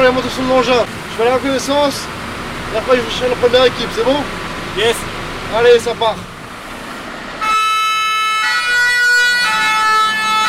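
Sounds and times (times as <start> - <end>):
speech: 0.0 - 6.3
departing fire truck rumbling: 0.0 - 10.4
fire truck two-tone siren wailing: 7.4 - 10.4.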